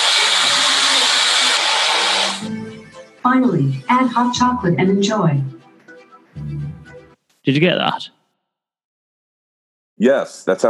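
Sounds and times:
kitchen blender whirring, liquefying ingredients: 0:00.0 - 0:02.5
speech: 0:03.3 - 0:05.6, 0:07.5 - 0:08.2, 0:10.0 - 0:10.6.

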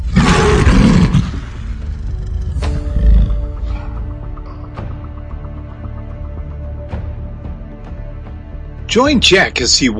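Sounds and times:
lion roar: 0:00.0 - 0:04.2
speech: 0:08.9 - 0:09.9.

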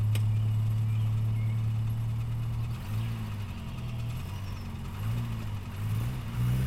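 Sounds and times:
Bentley engine idling and revving as it pulls away: 0:00.0 - 0:06.6.

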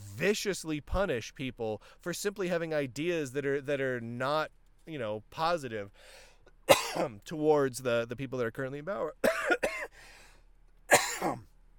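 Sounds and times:
speech: 0:00.2 - 0:09.6, 0:11.2 - 0:11.5
harsh throaty coughing after something went down the wrong pipe: 0:06.7 - 0:07.1, 0:09.2 - 0:10.0, 0:10.9 - 0:11.5.

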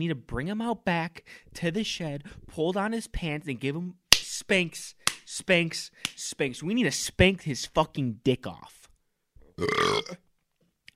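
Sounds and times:
speech: 0:00.0 - 0:08.8, 0:09.6 - 0:10.2
loud rumbling burp: 0:09.6 - 0:10.2.

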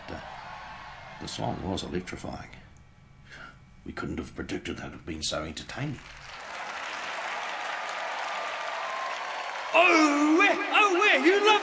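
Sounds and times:
speech: 0:01.2 - 0:02.6, 0:03.9 - 0:06.3, 0:09.7 - 0:11.6
large crowd clapping in a standing ovation: 0:06.0 - 0:11.6.

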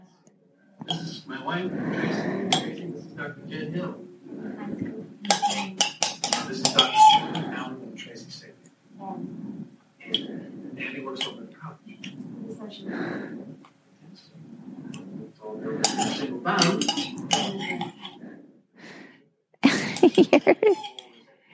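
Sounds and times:
speech: 0:00.9 - 0:05.8
spoon clinking and scraping against a bowl while eating ice cream: 0:05.3 - 0:07.4, 0:15.8 - 0:18.1
laughter: 0:19.6 - 0:21.0.

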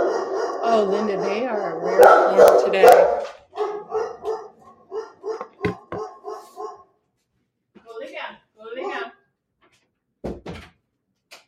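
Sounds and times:
dogs barking in sharp yaps: 0:00.0 - 0:07.0
speech: 0:00.7 - 0:03.4
brief thump: 0:05.4 - 0:06.1.

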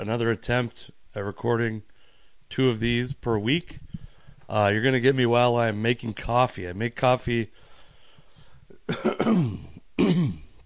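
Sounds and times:
speech: 0:00.0 - 0:01.9, 0:02.5 - 0:03.8, 0:04.5 - 0:07.6, 0:08.9 - 0:10.4
rough throat-clearing coughs into the microphone: 0:08.8 - 0:10.6.

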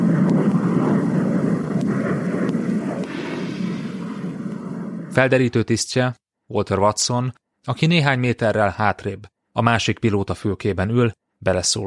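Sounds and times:
aircraft engine roar at 26 km altitude as the pilot pushes the throttle: 0:00.0 - 0:05.3
speech: 0:05.2 - 0:11.8.

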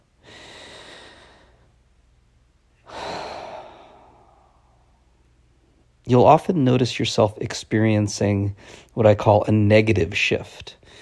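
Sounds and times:
slow deep breath in and out: 0:00.2 - 0:01.8, 0:02.8 - 0:05.2, 0:08.6 - 0:09.0, 0:10.8 - 0:11.0
speech: 0:06.1 - 0:11.0.

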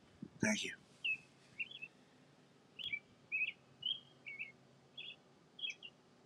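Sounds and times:
speech: 0:00.4 - 0:00.8
birds chirping in short bright bursts: 0:00.4 - 0:02.0, 0:02.8 - 0:06.2.

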